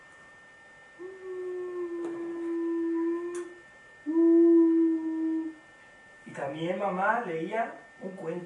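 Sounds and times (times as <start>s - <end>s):
child vocally imitating a flying airplane with droning hums: 1.0s - 3.5s, 4.1s - 5.6s
speech: 6.5s - 8.4s.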